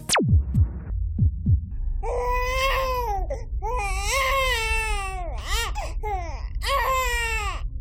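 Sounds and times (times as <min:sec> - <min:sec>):
soft low thumps: 0:00.1 - 0:02.0
baby crying: 0:02.0 - 0:07.7.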